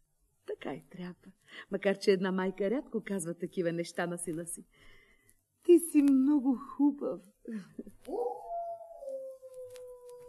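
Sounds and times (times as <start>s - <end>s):
speech: 0.6s - 5.0s, 5.6s - 8.4s
grey wolf howling: 8.1s - 10.2s.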